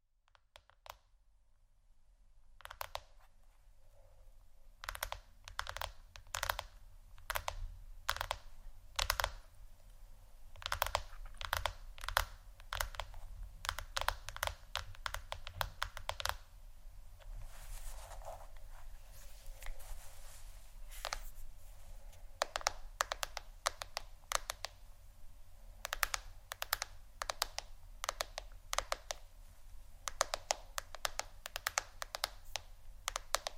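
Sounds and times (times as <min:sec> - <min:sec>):
fingers tapping on a phone or tablet screen: 0:00.2 - 0:01.1, 0:02.6 - 0:03.2, 0:04.8 - 0:09.5, 0:10.5 - 0:16.5, 0:22.4 - 0:24.8, 0:25.8 - 0:29.2, 0:30.0 - 0:33.5
low steady hum: 0:03.2 - 0:31.5.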